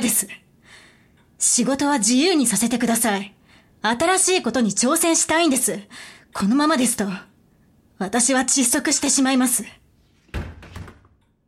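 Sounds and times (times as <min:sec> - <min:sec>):
speech: 0:00.0 - 0:00.4, 0:01.4 - 0:07.3, 0:08.0 - 0:09.8
office door swinging shut with a solid low thump: 0:10.2 - 0:11.2.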